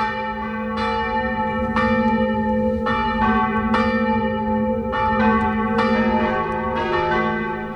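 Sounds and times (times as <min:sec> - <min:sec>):
baroque parish and monastery church bells pealing in Upper Bavaria Germany: 0:00.0 - 0:07.7.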